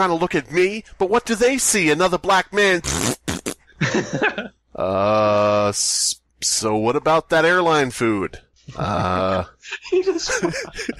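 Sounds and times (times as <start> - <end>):
speech: 0.0 - 3.2, 3.8 - 10.9
vocal imitation of a loud fart: 2.8 - 3.7
laughter: 3.8 - 4.6, 8.8 - 10.9.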